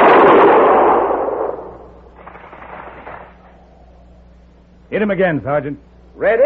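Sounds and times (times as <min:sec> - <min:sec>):
gun fired on command: 0:00.0 - 0:03.7
speech: 0:04.9 - 0:06.4.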